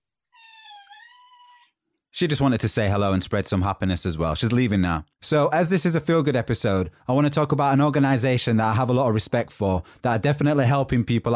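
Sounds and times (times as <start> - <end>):
cat meowing: 0.3 - 1.8
speech: 2.2 - 11.3.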